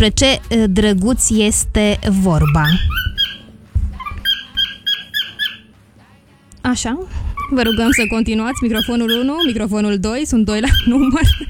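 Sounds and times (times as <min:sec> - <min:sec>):
speech: 0:00.0 - 0:03.1, 0:06.6 - 0:11.4
two mainly yellow parrots squawking and chirping: 0:02.2 - 0:05.7, 0:07.1 - 0:11.4.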